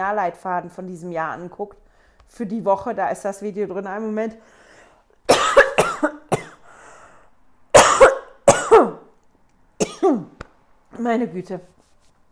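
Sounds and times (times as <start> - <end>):
speech: 0.0 - 4.6, 11.0 - 11.8
harsh coughing fit after choking: 5.3 - 6.7, 7.7 - 9.1, 9.8 - 10.4.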